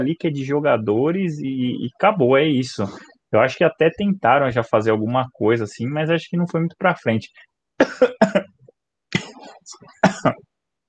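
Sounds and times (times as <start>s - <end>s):
speech: 0.0s - 8.5s, 9.4s - 10.5s
person coughing after choking: 7.8s - 10.4s.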